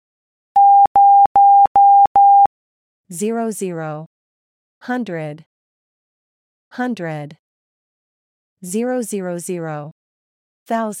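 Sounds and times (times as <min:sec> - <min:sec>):
steady Morse code tone beeps: 0:00.6 - 0:02.5
speech: 0:03.1 - 0:04.1, 0:04.8 - 0:05.5, 0:06.7 - 0:07.4, 0:08.6 - 0:10.0, 0:10.7 - 0:10.9.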